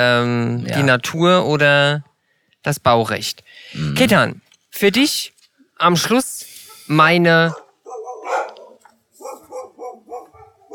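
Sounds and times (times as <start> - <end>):
speech: 0.0 - 7.6
several dogs barking: 7.4 - 10.7.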